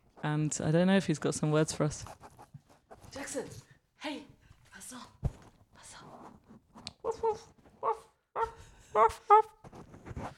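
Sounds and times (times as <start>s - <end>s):
speech: 0.2s - 2.3s, 3.2s - 5.2s, 7.2s - 8.0s, 9.0s - 9.4s
very small dog whimpering faintly: 7.0s - 9.6s.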